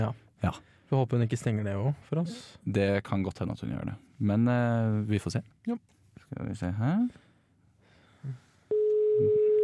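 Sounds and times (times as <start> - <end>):
speech: 0.0 - 7.2, 8.2 - 8.4, 9.2 - 9.4
telephone ringback tone while calling someone: 8.7 - 9.6.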